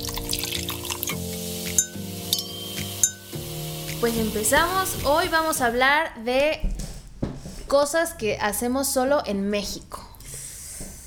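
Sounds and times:
humming tonal background: 1.0s - 5.8s
glasses clinking in a toast: 1.6s - 3.4s
speech: 4.0s - 6.7s, 7.7s - 10.0s.

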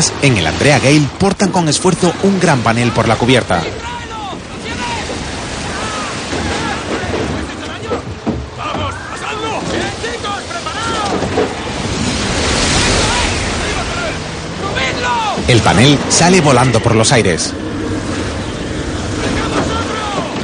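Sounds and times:
speech: 0.0s - 4.0s, 15.5s - 17.6s
crashing waves of a violent storm at sea on a fishing boat's deck: 0.0s - 20.4s
roaring wind of a violent storm at sea: 0.0s - 20.4s.

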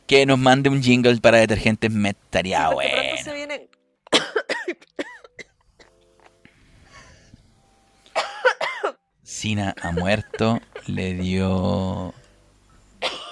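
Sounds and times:
speech: 0.1s - 3.4s, 9.4s - 12.2s
person coughing fit after choking on saliva: 4.1s - 5.9s, 8.2s - 9.0s, 9.8s - 11.0s, 13.0s - 13.3s
laughter: 9.8s - 11.6s.

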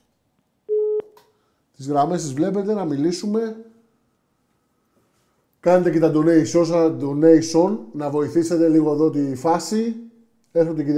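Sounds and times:
steady telephone line tone like a busy or call-connect beep: 0.7s - 1.1s
speech: 1.8s - 3.7s, 5.6s - 10.9s.

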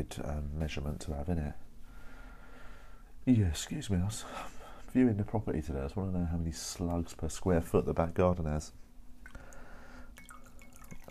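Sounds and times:
speech: 0.0s - 1.7s, 3.2s - 8.8s
coffee drips: 9.2s - 11.0s
coffee pouring into a cup: 9.2s - 11.0s.

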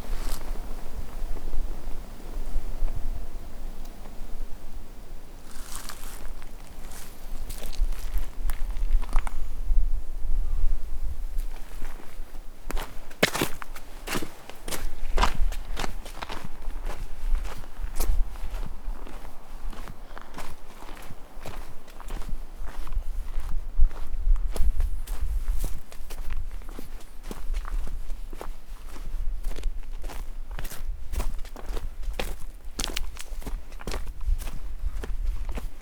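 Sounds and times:
footsteps crunching along an outdoor walking path: 0.0s - 9.7s, 11.4s - 35.8s
faint soft hum: 0.0s - 11.7s
low wind-like rumble: 0.0s - 25.6s.

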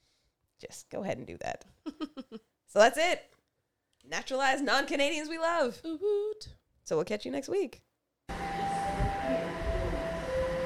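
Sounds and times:
speech: 0.6s - 3.3s, 4.0s - 8.5s
high-pitched squealing tones from train rails: 8.3s - 10.6s
train rumbling: 8.3s - 10.6s.

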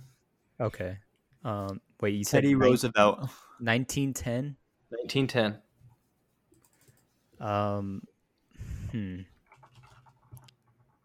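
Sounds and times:
speech: 0.6s - 5.6s, 7.4s - 8.1s, 8.9s - 9.3s
short voiced sounds: 2.5s - 2.8s
typing on a computer keyboard: 6.5s - 7.1s, 9.4s - 11.0s.

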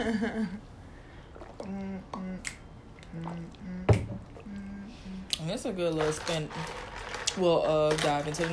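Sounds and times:
speech: 0.0s - 0.8s, 1.6s - 8.5s
person sipping from a glass of ice water: 1.0s - 5.4s
soft hummed swallowing-like vocal sounds: 1.5s - 5.3s.

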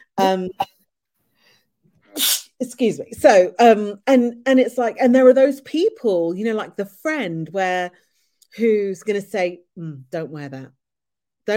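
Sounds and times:
speech: 0.2s - 0.8s, 2.2s - 10.8s
person sneezing: 2.1s - 2.6s.

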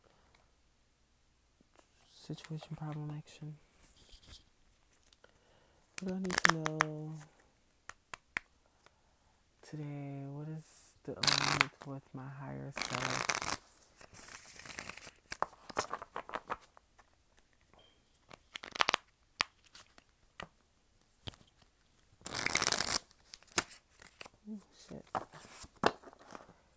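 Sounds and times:
speech: 2.3s - 3.7s, 6.0s - 7.4s, 9.7s - 13.4s
deck of cards being shuffled: 6.0s - 7.3s, 11.2s - 11.9s, 12.8s - 26.5s.

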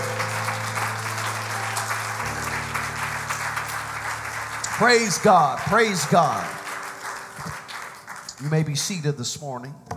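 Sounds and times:
keyboard or organ chords: 0.0s - 7.7s
audience applause: 0.0s - 9.0s
speech: 4.8s - 6.6s, 8.4s - 9.9s.

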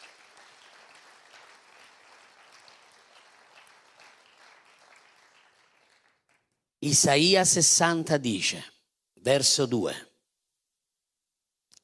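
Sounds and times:
audience applauding in praise: 0.0s - 6.6s
speech: 6.8s - 10.1s.

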